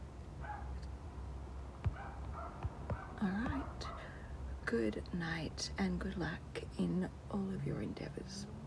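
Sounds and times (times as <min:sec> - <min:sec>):
low rumble: 0:00.0 - 0:08.6
dogs barking in high-pitched bursts: 0:00.4 - 0:00.8, 0:01.9 - 0:04.2
sharp knock: 0:01.8 - 0:03.8
speech: 0:03.2 - 0:04.0, 0:04.7 - 0:08.6.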